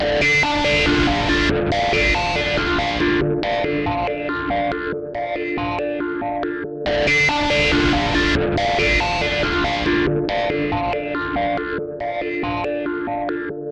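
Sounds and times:
140 D guitar loop: 0.0 - 13.6.

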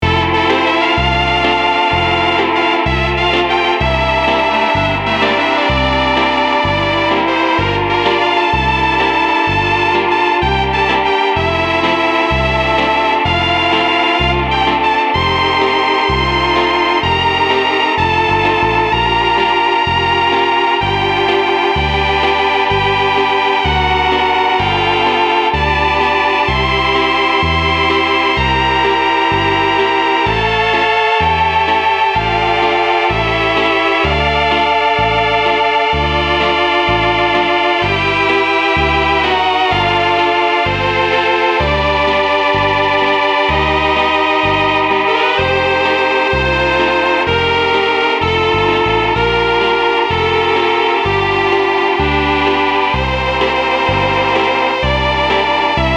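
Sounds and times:
Novachord Solovox electronic instrument: 0.0 - 55.9.

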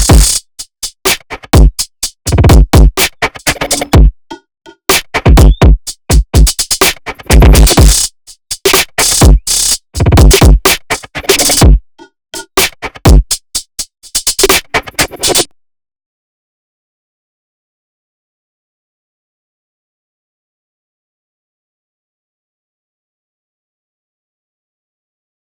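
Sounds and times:
drums with wet reverb: 0.0 - 4.1, 4.8 - 11.8, 12.4 - 15.5.

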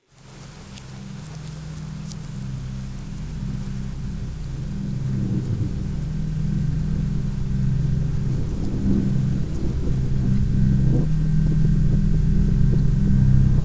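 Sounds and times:
rain: 0.0 - 13.6
dark organ background music: 3.6 - 13.6.

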